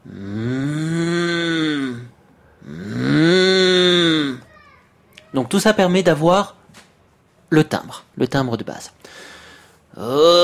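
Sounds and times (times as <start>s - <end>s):
human voice imitating a mooing cow as a steppe overtone singing exercise: 0.0s - 4.5s, 10.0s - 10.4s
speech: 5.4s - 6.6s, 7.5s - 9.3s, 10.0s - 10.4s.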